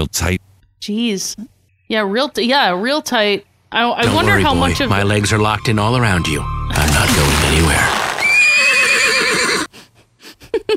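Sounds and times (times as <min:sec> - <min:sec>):
speech: 0:00.0 - 0:08.0
horse whinnying: 0:07.8 - 0:09.7.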